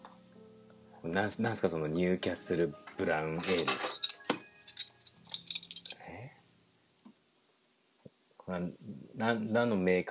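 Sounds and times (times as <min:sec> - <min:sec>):
speech: 0:01.0 - 0:03.9, 0:08.6 - 0:10.0
bunch of keys with metal bottle-opener keychain jangling: 0:03.0 - 0:06.0.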